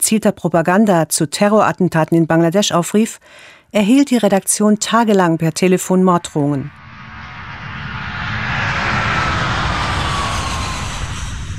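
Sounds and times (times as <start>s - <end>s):
speech: 0.1s - 6.8s
airliner engine drone in the cabin in flight: 6.7s - 11.5s.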